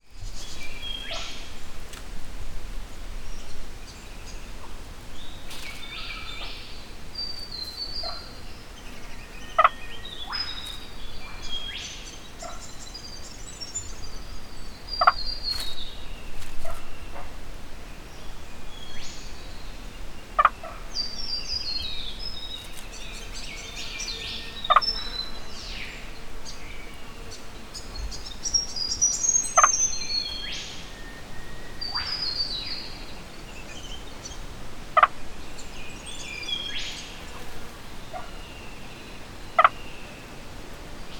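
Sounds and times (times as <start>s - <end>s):
birds calling in subtropical Australian rainforest: 0.0s - 1.9s, 2.9s - 41.1s
frog calling in subtropical Australian rainforest: 20.4s - 20.9s, 24.6s - 24.9s, 29.5s - 29.9s, 35.0s - 35.2s, 39.6s - 39.8s.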